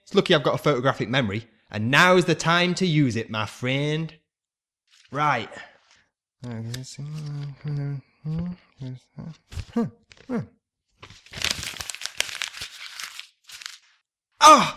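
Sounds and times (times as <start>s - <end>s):
speech: 0.1s - 4.2s, 5.1s - 5.7s, 6.4s - 11.4s, 14.4s - 14.7s
person vocalizing: 6.5s - 10.5s, 14.4s - 14.7s
paper script page torn and crumpled for use as toilet paper: 11.0s - 14.0s.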